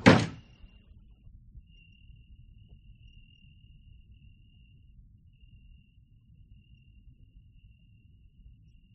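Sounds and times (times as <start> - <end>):
door slammed shut behind a departing man: 0.0 - 0.5
faint steady high-pitched hum: 0.0 - 8.9.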